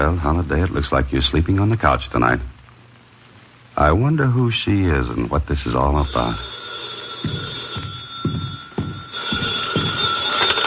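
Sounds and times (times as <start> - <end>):
speech: 0.0 - 2.6, 3.8 - 8.4
telephone bell ringing: 6.0 - 10.6.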